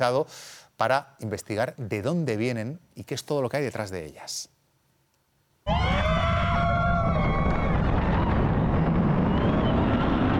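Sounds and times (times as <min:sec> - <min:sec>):
speech: 0:00.0 - 0:04.6
many people screaming on a roller coaster: 0:05.7 - 0:10.3
roller coaster roaring rush: 0:05.7 - 0:10.3.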